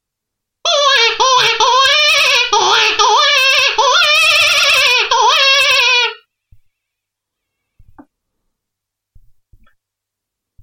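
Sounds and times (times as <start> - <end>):
hare predator call imitating a distressed hare: 0.7 - 6.3.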